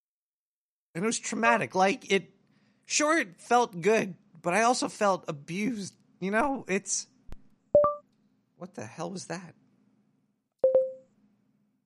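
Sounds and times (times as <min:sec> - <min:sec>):
speech: 0:01.0 - 0:07.1, 0:08.6 - 0:09.6
mobile phone ringing: 0:10.6 - 0:11.1.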